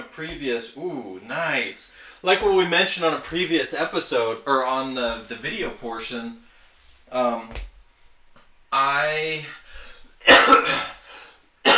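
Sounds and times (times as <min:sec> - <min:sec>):
speech: 0:00.1 - 0:06.4, 0:07.1 - 0:07.7, 0:08.7 - 0:09.6, 0:10.2 - 0:10.9
person coughing: 0:10.2 - 0:11.0.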